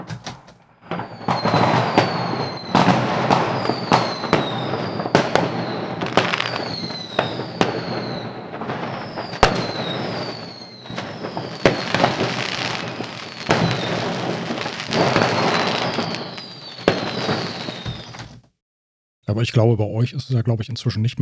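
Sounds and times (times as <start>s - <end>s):
New Year's firecracker bangs: 0.0s - 18.4s
New Year's fireworks rocket pops: 0.0s - 18.4s
continuous crackling rumble of New Year's celebration: 0.3s - 16.4s
speech: 19.4s - 21.1s.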